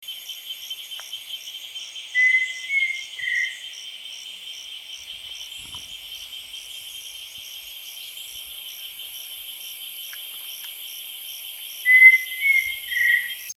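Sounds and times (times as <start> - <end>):
pheasant cuckoo calling: 2.1 - 3.7, 11.8 - 13.5.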